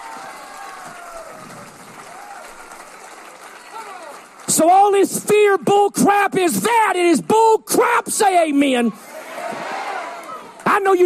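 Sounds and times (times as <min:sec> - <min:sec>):
applause: 0:00.0 - 0:05.7
large crowd roaring and cheering: 0:00.0 - 0:07.0, 0:07.7 - 0:11.0
speech: 0:04.6 - 0:09.1, 0:10.8 - 0:11.0
people shouting: 0:08.9 - 0:10.5.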